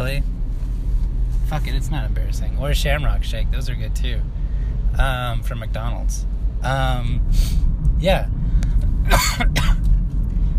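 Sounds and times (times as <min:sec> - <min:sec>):
low rumble: 0:00.0 - 0:10.5
speech: 0:01.5 - 0:04.4, 0:05.0 - 0:08.4, 0:09.0 - 0:09.8
loud cough: 0:09.1 - 0:09.9.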